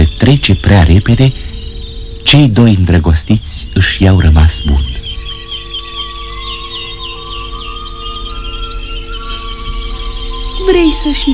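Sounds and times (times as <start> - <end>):
nightingale singing at night among pomegranate trees: 0.0 - 11.3
steady low drone: 0.0 - 11.3
speech: 0.1 - 1.6, 2.3 - 5.0, 10.7 - 11.3.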